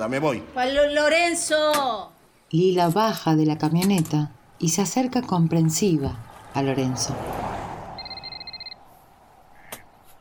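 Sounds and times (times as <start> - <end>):
speech: 0.0 - 7.5
mobile phone electronic warbling ringtone: 8.0 - 8.8.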